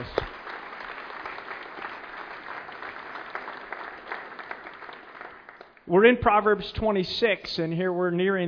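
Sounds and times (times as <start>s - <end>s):
audience applause: 0.0s - 5.8s
speech: 5.9s - 8.4s.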